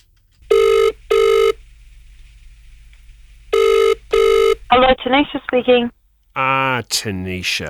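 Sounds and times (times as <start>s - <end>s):
outgoing phone call double ringing tone: 0.4s - 6.0s
speech: 4.7s - 7.6s.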